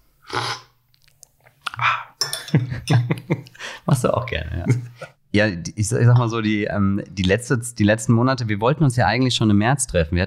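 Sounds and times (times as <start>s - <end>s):
slurping coffee from a cup: 0.3s - 0.7s
laughter: 2.4s - 3.5s, 4.5s - 5.1s
speech: 2.5s - 3.4s, 4.0s - 10.2s.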